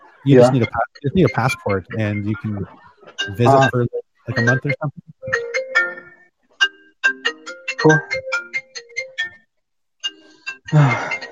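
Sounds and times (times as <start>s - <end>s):
speech: 0.2s - 5.4s, 7.8s - 8.4s, 10.7s - 11.3s
mobile phone ringing with a bright melodic ringtone: 3.2s - 11.3s.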